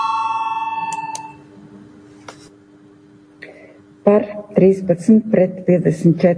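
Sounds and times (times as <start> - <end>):
electronic parliamentary voting bell ringing before a vote on an amendment: 0.0 - 1.4
speech: 4.1 - 6.3.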